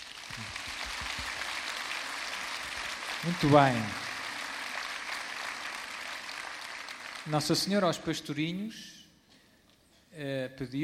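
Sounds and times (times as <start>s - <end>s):
crowd clapping: 0.0s - 8.2s
speech: 3.2s - 4.0s, 7.3s - 9.0s, 10.2s - 10.8s.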